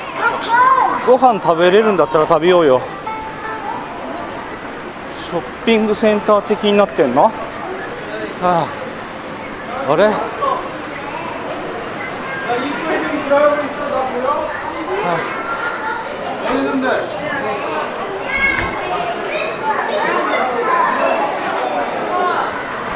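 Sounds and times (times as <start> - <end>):
children's voices: 0.0 - 22.9
crowd chatter at a cinema ticket counter: 0.0 - 22.9
speech: 0.4 - 3.0, 5.2 - 7.4, 8.4 - 8.8, 9.9 - 10.4, 15.0 - 15.4.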